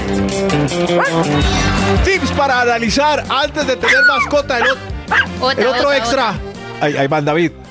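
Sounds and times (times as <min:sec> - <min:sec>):
speech: 0:00.1 - 0:07.6
dog's short rising yelp: 0:00.9 - 0:01.4, 0:03.8 - 0:05.7
several dogs barking and yipping: 0:00.9 - 0:01.4, 0:03.8 - 0:05.7.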